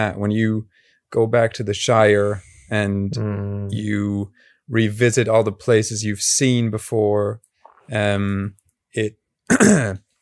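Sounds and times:
speech: 0:00.0 - 0:10.0
throat-clearing cough made while getting emotional: 0:09.5 - 0:10.0.

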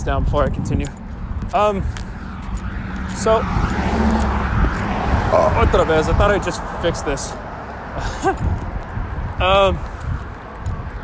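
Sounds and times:
speech: 0:00.0 - 0:02.0, 0:03.1 - 0:04.2, 0:05.3 - 0:07.4, 0:08.0 - 0:08.7, 0:09.4 - 0:09.9
cars passing by on road: 0:00.0 - 0:11.0
brief voice-like tones: 0:05.2 - 0:05.9.

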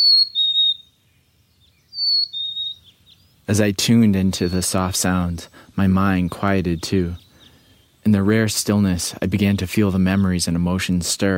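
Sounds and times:
chickadee whistled two-note phrase among fir trees: 0:00.0 - 0:01.0, 0:01.6 - 0:03.2
speech: 0:03.5 - 0:07.2, 0:08.0 - 0:11.3.

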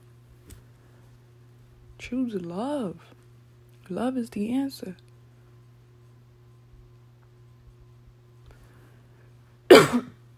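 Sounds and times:
faint low hum: 0:00.0 - 0:10.3
speech: 0:02.0 - 0:03.2, 0:03.9 - 0:05.1
rough brief cough: 0:09.7 - 0:10.2
throat clearing: 0:09.7 - 0:10.2.

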